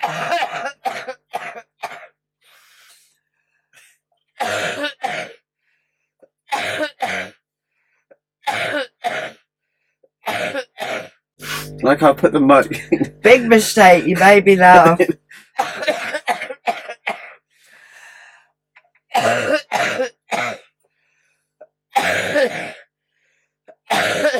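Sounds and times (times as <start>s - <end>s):
person clearing throat: 0.0s - 2.2s, 4.4s - 5.4s, 6.5s - 7.4s, 8.5s - 9.5s, 10.2s - 13.2s, 15.6s - 17.4s, 19.1s - 20.7s, 22.0s - 22.9s, 23.8s - 24.3s
person coughing: 0.0s - 2.2s, 4.4s - 5.4s, 6.5s - 7.4s, 8.5s - 9.5s, 10.2s - 13.2s, 15.6s - 17.4s, 19.1s - 20.7s, 22.0s - 22.9s, 23.7s - 24.3s
speech: 11.9s - 15.2s.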